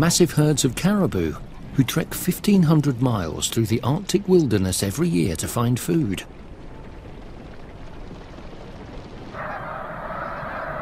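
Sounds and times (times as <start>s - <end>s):
speech: 0.0s - 6.4s
migrating mass flock of snow geese honking: 9.4s - 10.8s.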